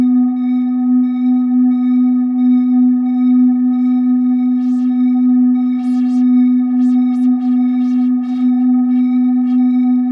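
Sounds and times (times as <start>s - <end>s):
steady 250 Hz sine wave hum with faint higher overtones: 0.0s - 10.1s.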